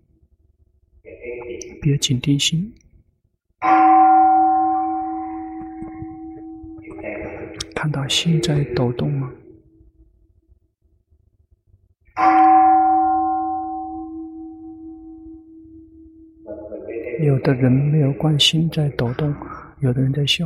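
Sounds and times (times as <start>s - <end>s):
speech: 1.0s - 2.8s, 3.6s - 3.8s, 7.8s - 9.4s, 17.2s - 20.4s
meditation bell ringing: 3.6s - 7.5s, 12.2s - 16.5s.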